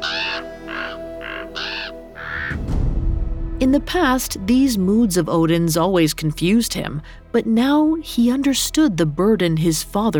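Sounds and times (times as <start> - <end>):
ravens cawing: 0.0 - 2.6
speech: 3.6 - 10.1.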